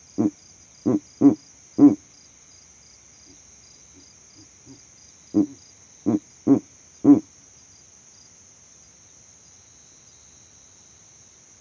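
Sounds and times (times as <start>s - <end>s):
male Verreaux's eagle owl giving deep grunting hoots from a tree in savanna: 0.0s - 2.0s, 4.7s - 7.3s
steady high insect hum in savanna: 0.0s - 11.5s.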